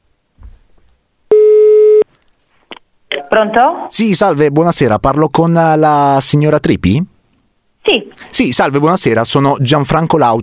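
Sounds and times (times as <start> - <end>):
telephone ringback tone after a number is dialled: 1.3 - 2.0
speech: 3.3 - 7.1, 7.9 - 10.4.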